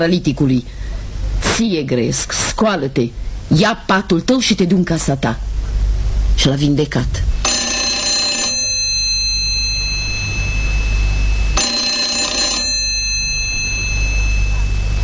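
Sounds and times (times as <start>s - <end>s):
speech: 0.0s - 0.8s, 1.6s - 5.5s, 6.4s - 7.4s
low hum: 0.0s - 15.0s
telephone ringing with an incoming call from a hospital: 7.4s - 15.0s.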